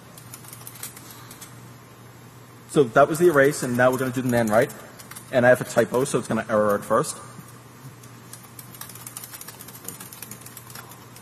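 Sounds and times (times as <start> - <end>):
old Model M keyboard typing rattle: 0.0 - 1.5, 3.2 - 7.0, 8.0 - 11.2
low hum: 0.0 - 11.2
speech: 2.7 - 7.4.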